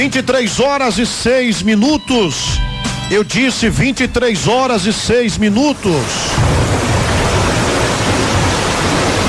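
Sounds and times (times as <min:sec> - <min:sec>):
speech: 0:00.1 - 0:06.6
dense rain pouring in Ponta Grossa Parana Brazil: 0:05.7 - 0:09.2.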